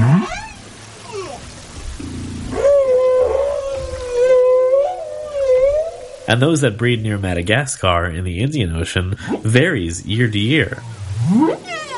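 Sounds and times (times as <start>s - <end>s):
whales singing at breeding grounds: 0.0s - 6.7s, 10.1s - 11.9s
speech: 6.3s - 11.6s.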